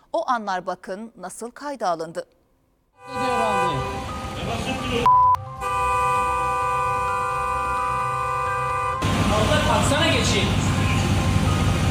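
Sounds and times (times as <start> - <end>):
speech: 0.2 - 2.4, 4.5 - 5.2, 9.7 - 10.7
car horn honking: 3.0 - 9.2
street noise: 3.0 - 11.8.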